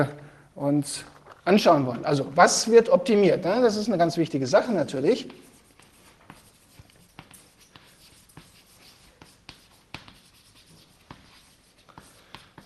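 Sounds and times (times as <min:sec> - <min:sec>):
speech: 0:00.0 - 0:05.5
writing strokes scratching during a lecture: 0:05.2 - 0:12.6.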